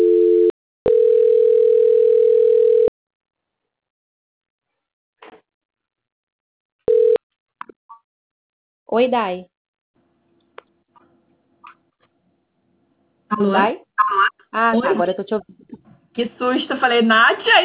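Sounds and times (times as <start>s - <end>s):
telephone line beeps during a call transfer: 0.0s - 2.9s, 6.9s - 7.2s
speech: 8.9s - 9.5s, 13.3s - 17.6s.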